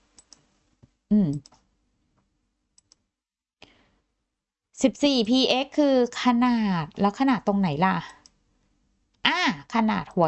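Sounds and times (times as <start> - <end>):
computer mouse clicks while formatting a spreadsheet table header: 0.1 - 0.5, 1.3 - 1.7, 2.8 - 3.0, 8.1 - 8.4
speech: 1.1 - 1.6, 4.8 - 8.2, 9.2 - 10.2.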